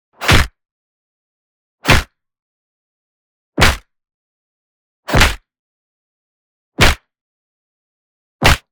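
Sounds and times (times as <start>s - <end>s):
punch slap hit: 0.2s - 0.5s, 1.8s - 2.1s, 3.6s - 3.8s, 5.1s - 5.4s, 6.8s - 7.0s, 8.4s - 8.7s.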